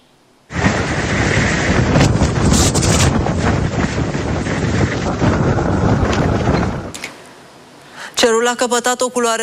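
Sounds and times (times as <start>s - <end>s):
strong wind of a sandstorm roaring: 0.5s - 7.1s
speech: 8.2s - 9.4s.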